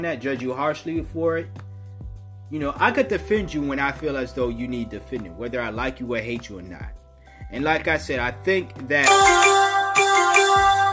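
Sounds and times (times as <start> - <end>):
speech: 0.0 - 1.6, 2.5 - 9.5
sports news app notification chime on a phone: 9.0 - 10.9.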